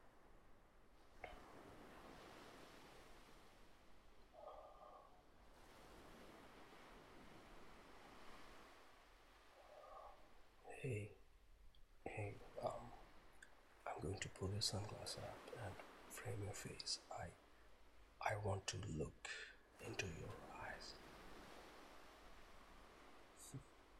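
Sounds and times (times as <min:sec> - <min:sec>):
ocean surf washing in rolling swells: 0:00.0 - 0:11.3, 0:12.0 - 0:23.9
brief vocal sounds: 0:10.7 - 0:11.2, 0:12.1 - 0:13.0, 0:13.9 - 0:17.3, 0:18.2 - 0:20.9
speech: 0:10.8 - 0:11.2, 0:14.4 - 0:17.4, 0:18.2 - 0:21.0, 0:23.5 - 0:23.7.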